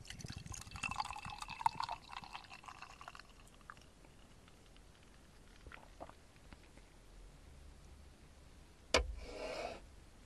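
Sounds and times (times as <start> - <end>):
drink poured into a small rounded glass: 0.0 - 6.2.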